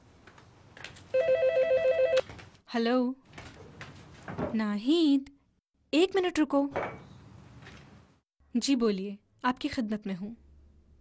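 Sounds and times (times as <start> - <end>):
telephone ringing with a trilling electronic tone: 1.1 - 2.2
speech: 2.7 - 3.2, 4.5 - 7.1, 8.5 - 10.4.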